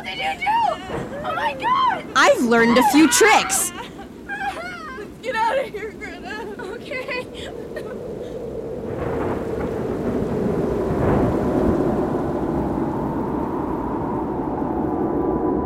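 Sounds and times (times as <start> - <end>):
speech: 0.1 - 3.8
steady heavy rain in a sudden storm: 7.6 - 14.6
deep rolling thunder: 8.8 - 15.5.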